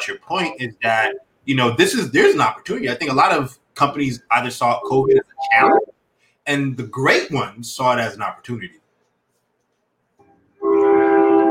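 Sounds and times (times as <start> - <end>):
speech: 0.0 - 8.8
train horn blaring: 10.6 - 11.4.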